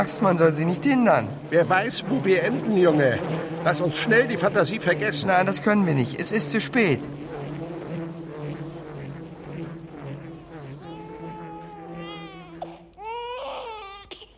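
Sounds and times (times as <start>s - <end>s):
speech: 0.0s - 7.4s
child crying: 10.5s - 14.3s.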